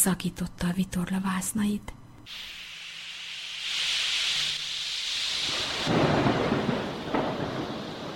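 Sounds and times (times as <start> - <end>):
speech: 0.0 - 2.6
gale and rain hissing over a stormy sea: 2.3 - 8.1
deep rumbling roll of thunder: 5.5 - 8.1.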